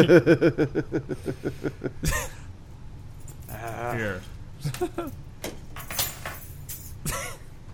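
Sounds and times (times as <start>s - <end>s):
speech: 0.0s - 2.4s, 3.5s - 5.6s
low hum: 0.0s - 7.7s
set of car keys rolled off a table onto a hard surface: 3.2s - 3.8s, 4.8s - 7.0s.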